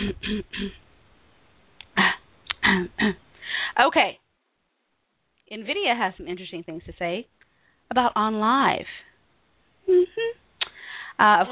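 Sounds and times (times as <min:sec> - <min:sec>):
person clearing throat: 0:00.0 - 0:00.8, 0:02.0 - 0:03.2
speech: 0:03.8 - 0:04.2, 0:05.5 - 0:09.1, 0:09.8 - 0:10.4, 0:11.2 - 0:11.5.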